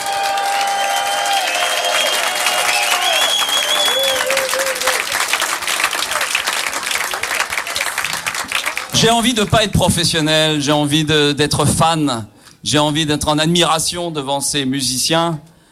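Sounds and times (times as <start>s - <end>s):
large audience applauding two musicians: 0.0s - 9.6s
audience whistles: 0.8s - 4.9s
speech: 9.0s - 15.5s.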